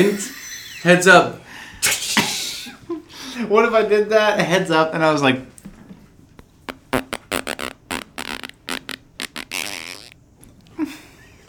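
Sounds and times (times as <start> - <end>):
speech: 0.0 - 2.0, 3.4 - 5.5
mouth-made fart noise: 6.4 - 10.2.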